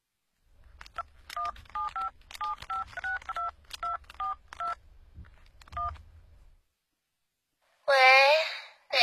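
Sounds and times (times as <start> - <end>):
steady low hum: 0.0 - 9.0
mobile phone keypad beeps as a number is dialed: 1.4 - 4.8, 5.8 - 6.0.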